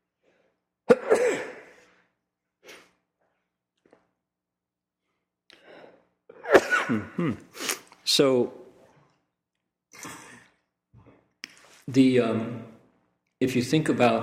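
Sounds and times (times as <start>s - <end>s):
person sneezing: 0.9s - 1.9s, 6.3s - 7.9s
quiet breathing: 5.0s - 6.2s
speech: 6.9s - 7.6s, 8.2s - 8.6s, 11.9s - 12.7s, 13.4s - 14.2s.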